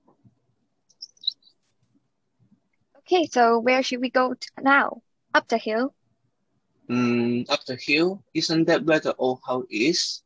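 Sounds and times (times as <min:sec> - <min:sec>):
bird chirping in a forest: 0:00.9 - 0:01.6
speech: 0:03.1 - 0:06.0, 0:06.9 - 0:10.2.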